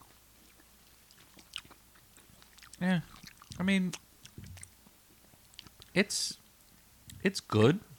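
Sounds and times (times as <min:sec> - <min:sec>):
crunching of big crisp spiced chip being bitten and chewed: 0:00.0 - 0:04.8, 0:05.4 - 0:06.0
speech: 0:02.8 - 0:04.0, 0:06.0 - 0:06.4, 0:07.2 - 0:07.9.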